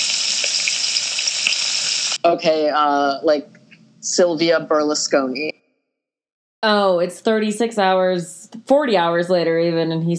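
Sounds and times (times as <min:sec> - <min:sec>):
food frying in hot oil: 0:00.0 - 0:02.2
speech: 0:02.2 - 0:05.5, 0:06.6 - 0:10.1.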